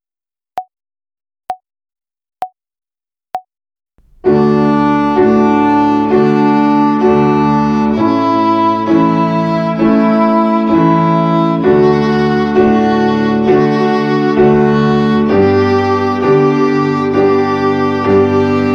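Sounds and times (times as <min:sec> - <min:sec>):
violin finger exercise on the D string in quarter notes: 0:04.0 - 0:18.7.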